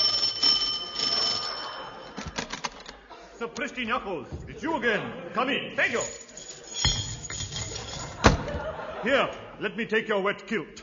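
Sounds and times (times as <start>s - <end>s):
bell beside a brass nameplate ringing: 0.0s - 2.4s, 5.8s - 8.2s
laughter: 1.1s - 3.6s, 4.3s - 5.6s, 7.8s - 9.6s
speech: 3.4s - 6.2s, 9.0s - 10.8s.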